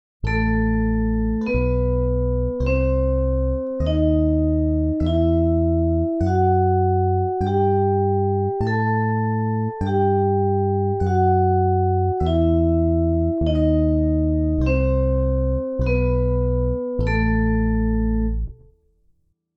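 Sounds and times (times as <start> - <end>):
musical scale: 0.3 - 18.6.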